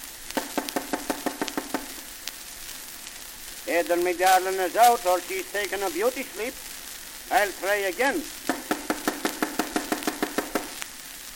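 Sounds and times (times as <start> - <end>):
sharp knocks on a door: 0.4 - 1.9, 8.5 - 10.8
speech: 3.7 - 6.7, 7.3 - 8.4.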